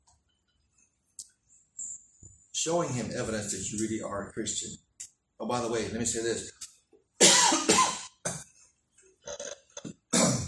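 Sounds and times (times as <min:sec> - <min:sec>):
speech: 0:02.6 - 0:04.8, 0:05.4 - 0:06.6
person coughing: 0:07.2 - 0:08.4, 0:09.8 - 0:10.4.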